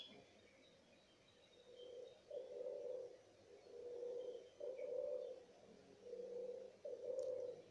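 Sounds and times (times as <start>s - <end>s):
doves cooing in soft low phrases: 1.7s - 7.6s.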